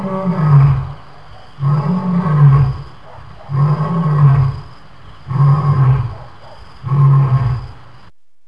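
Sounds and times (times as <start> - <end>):
lion roaring: 0.0 - 7.8.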